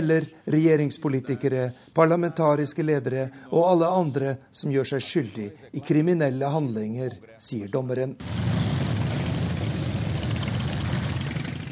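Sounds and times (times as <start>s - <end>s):
speech: 0.0s - 8.6s
motorcycle club motorcycles riding to the courthouse in Curitiba: 8.2s - 11.7s.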